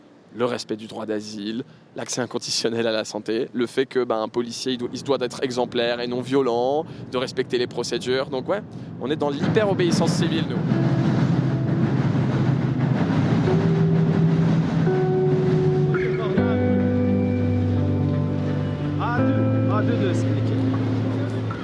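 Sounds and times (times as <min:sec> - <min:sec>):
speech: 0:00.4 - 0:10.8
trains passing on railway tracks near a busy Paris station: 0:04.4 - 0:21.6
din: 0:08.7 - 0:21.6.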